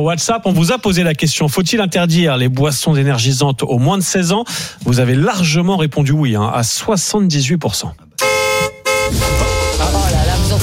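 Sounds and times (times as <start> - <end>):
speech: 0.0 - 8.2
compact SUV car horn blasts: 8.2 - 10.6.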